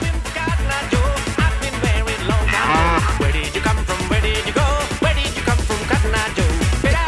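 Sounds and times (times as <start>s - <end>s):
upbeat dance music with a thumping beat: 0.0s - 7.0s
cow moo sound effect: 2.3s - 3.3s.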